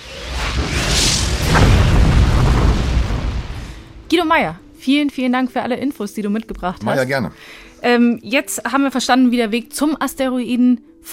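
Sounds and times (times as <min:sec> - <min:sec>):
deep rumbling explosion boom: 0:00.0 - 0:04.5
speech: 0:04.1 - 0:11.1.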